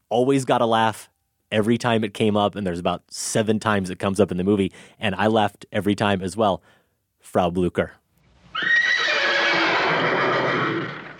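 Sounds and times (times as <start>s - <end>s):
speech: 0.1s - 8.0s
horse whinnying: 8.5s - 11.1s.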